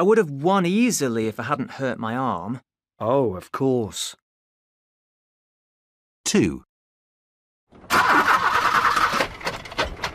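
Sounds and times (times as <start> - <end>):
speech: 0.0 - 4.2, 6.3 - 6.7
car engine cranking and sputtering without starting: 7.8 - 10.1.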